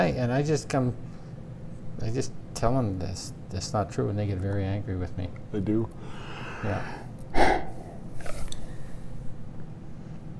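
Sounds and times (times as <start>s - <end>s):
speech: 0.0s - 1.1s, 2.0s - 7.6s
person yawning: 6.2s - 8.0s.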